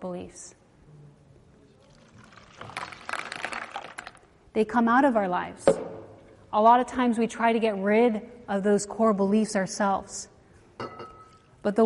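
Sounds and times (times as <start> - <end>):
speech: 0.0 - 0.6, 4.6 - 5.9, 6.5 - 11.0, 11.6 - 11.8
liquid pouring into a container: 1.8 - 4.3.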